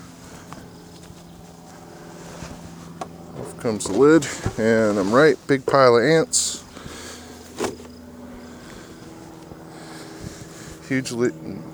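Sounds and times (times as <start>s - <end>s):
many bees buzzing at an opened hive: 0.0s - 11.7s
speech: 3.4s - 6.6s, 10.9s - 11.7s.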